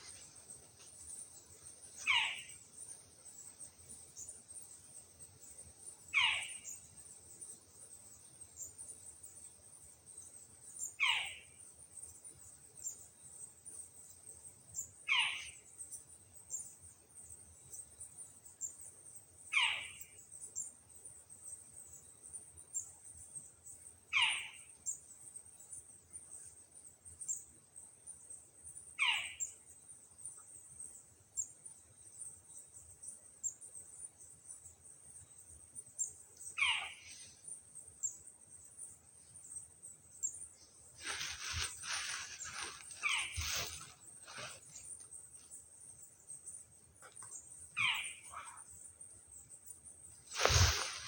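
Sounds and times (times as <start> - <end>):
Australian owlet nightjar calling: 2.0 - 2.6, 6.1 - 6.8, 10.8 - 11.6, 15.0 - 15.7, 19.5 - 20.2, 24.1 - 25.0, 28.9 - 29.6, 36.6 - 37.4, 41.0 - 44.8, 47.7 - 48.8, 50.3 - 51.0.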